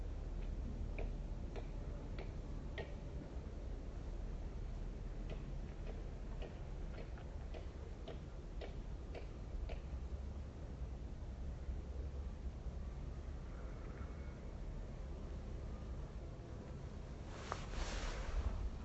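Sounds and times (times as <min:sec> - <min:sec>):
old aeroplane droning in the distance: 0:00.0 - 0:18.8.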